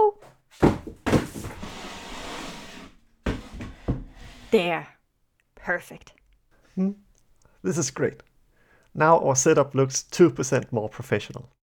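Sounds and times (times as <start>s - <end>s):
chairs being set down in an attic studio: 0.5s - 4.2s
chair dragged scraping across the floor: 1.0s - 4.6s
speech: 4.5s - 5.0s, 5.6s - 6.2s, 6.8s - 7.0s, 7.6s - 8.3s, 9.0s - 11.6s.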